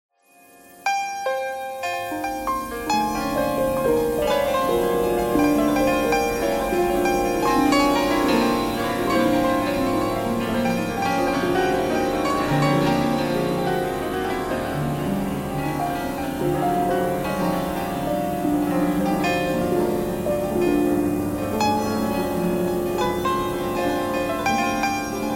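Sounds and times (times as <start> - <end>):
piano: 0.1 - 25.3
thread noise: 0.1 - 25.3.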